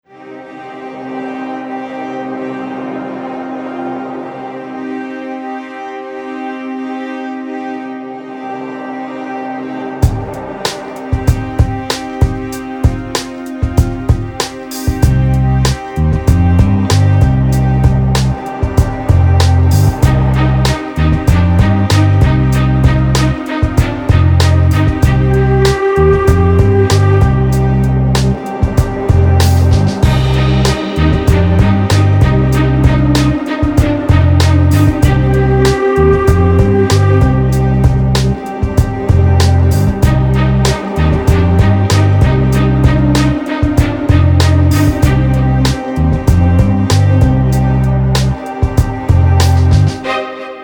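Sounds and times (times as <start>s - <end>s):
groove: 9.9s - 50.3s.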